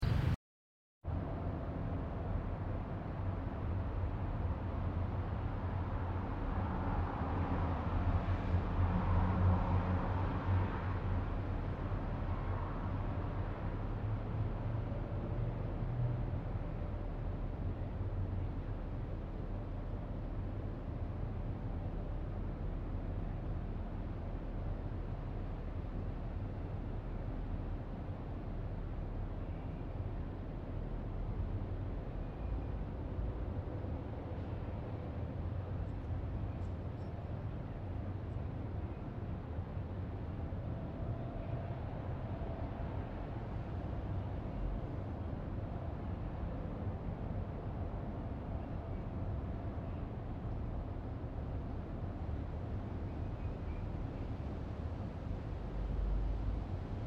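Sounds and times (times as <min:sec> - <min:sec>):
German city ambience: 0:00.0 - 0:00.4, 0:01.1 - 0:57.0.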